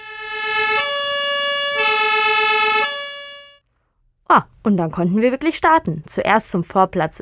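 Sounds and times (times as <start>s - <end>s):
siren of old ambulance converted into a bus being tested: 0.0s - 3.6s
speech: 4.3s - 7.2s.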